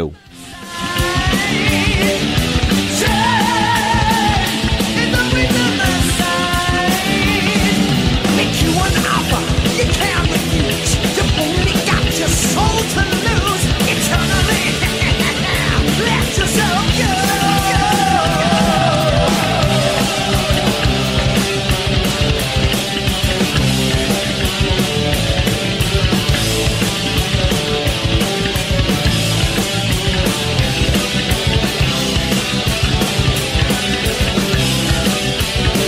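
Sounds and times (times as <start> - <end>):
speech: 0.0 - 0.3
steady rhythmic beats: 0.9 - 35.8
protest march crowd chanting slogans in unison: 17.4 - 21.6.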